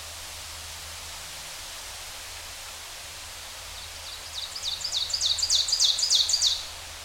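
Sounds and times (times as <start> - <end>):
Ovenbird song: 3.8 - 6.7.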